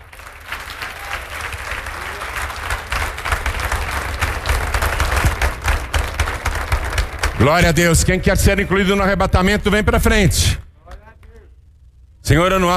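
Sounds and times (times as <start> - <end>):
church audience applauding: 0.0 - 7.7
speech: 7.4 - 10.6, 12.3 - 12.7.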